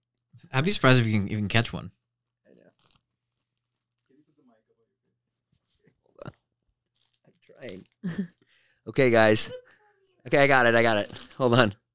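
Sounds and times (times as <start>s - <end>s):
speech: 0.4s - 2.0s, 7.6s - 9.6s, 10.3s - 11.8s
crunchy munching: 2.4s - 4.5s, 5.4s - 8.6s.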